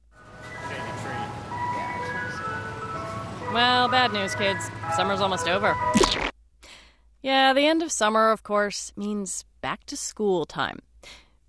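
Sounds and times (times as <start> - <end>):
tinkling ice cream truck jingle with bell-like melody: 0.1 - 6.1
low engine rumble of ice cream truck: 0.2 - 5.8
speech: 3.6 - 6.3, 7.2 - 11.2.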